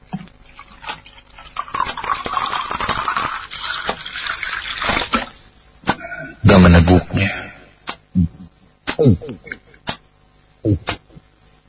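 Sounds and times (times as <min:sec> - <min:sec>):
water poured from a tap or jug into a drinking glass in a kitchen: 0:00.4 - 0:05.4
speech: 0:06.6 - 0:07.0, 0:09.0 - 0:09.3.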